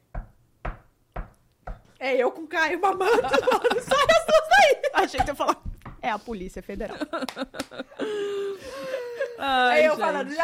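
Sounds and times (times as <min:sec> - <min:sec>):
firm knocking on a door: 0:00.1 - 0:01.8, 0:03.2 - 0:07.1
speech: 0:02.0 - 0:08.8, 0:09.4 - 0:10.4
laughter: 0:02.8 - 0:05.6, 0:06.8 - 0:10.2.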